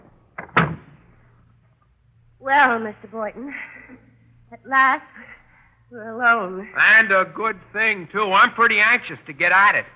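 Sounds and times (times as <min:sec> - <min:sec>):
door closing as guests leave: 0:00.0 - 0:01.0
speech: 0:02.5 - 0:05.3, 0:05.9 - 0:09.9.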